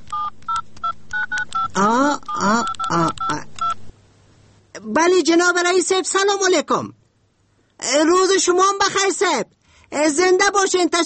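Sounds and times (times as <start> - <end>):
telephone keypad tones from dialing: 0.0 - 3.8
speech: 1.8 - 2.7, 5.0 - 7.0, 7.8 - 11.0.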